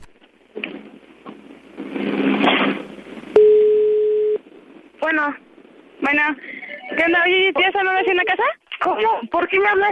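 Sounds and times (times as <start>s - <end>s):
rustling noise: 0.0s - 9.8s
telephone call tone as a call is placed on a public line: 3.4s - 4.4s
speech: 6.1s - 9.8s.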